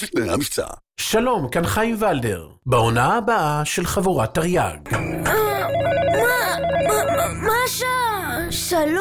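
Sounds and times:
speech: 0.3s - 8.9s
telephone ringing with warbling electronic tone: 4.9s - 7.8s.

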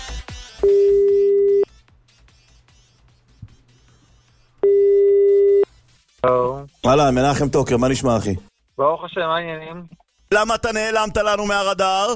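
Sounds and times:
telephone ringing tones on a recorded call: 0.6s - 1.7s, 4.6s - 5.6s
speech: 6.2s - 12.1s.

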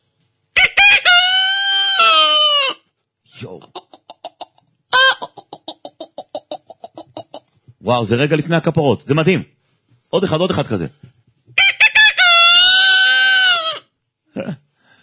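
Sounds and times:
man imitating a rooster crowing on live radio: 0.6s - 2.8s, 5.0s - 5.4s, 11.6s - 13.9s
man imitating rhythmic clucks: 3.4s - 7.5s
speech: 7.9s - 11.0s.

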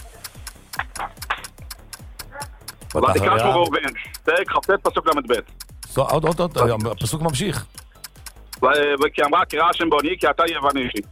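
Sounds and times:
clock ticking: 0.0s - 11.1s
speech: 3.0s - 7.8s, 8.6s - 11.1s.

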